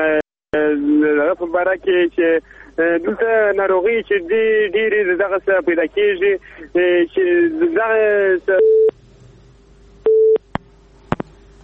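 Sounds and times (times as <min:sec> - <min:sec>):
faint hum: 0:00.0 - 0:11.6
speech: 0:01.4 - 0:08.8
phone busy tone after a call disconnects: 0:10.1 - 0:10.4.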